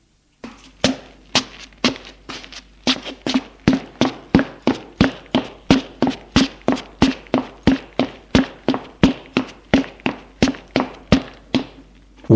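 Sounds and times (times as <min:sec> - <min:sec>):
man's footsteps climbing a large staircase in a house: 0:00.4 - 0:12.3.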